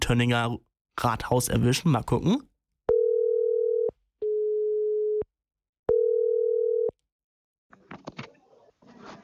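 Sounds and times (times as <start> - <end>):
speech: 0.1 - 2.5
outgoing phone call ringing tone: 2.9 - 5.2, 5.9 - 7.0.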